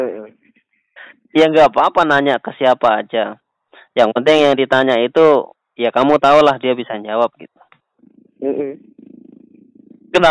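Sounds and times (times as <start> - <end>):
speech: 1.3 - 3.4, 4.0 - 7.6, 8.4 - 9.0
kitten purring: 8.0 - 10.2.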